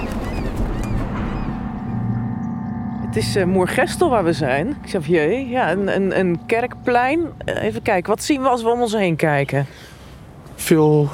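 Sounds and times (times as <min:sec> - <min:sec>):
birds shrieking with harsh honking cries: 0:00.0 - 0:02.3
low outdoor rumble: 0:00.0 - 0:10.5
speech: 0:03.2 - 0:09.9, 0:10.6 - 0:11.1.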